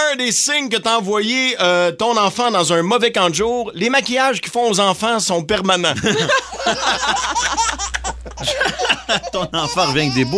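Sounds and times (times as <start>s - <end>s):
speech: 0.1s - 10.3s
baby laughing: 6.2s - 10.3s.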